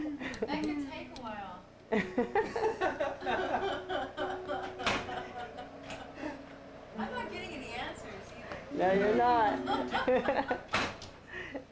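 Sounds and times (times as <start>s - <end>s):
speech: 0.4s - 4.1s, 8.8s - 10.6s
laughter: 1.9s - 6.5s, 9.1s - 11.6s
thud of a door shutting: 4.7s - 5.2s, 10.6s - 11.1s.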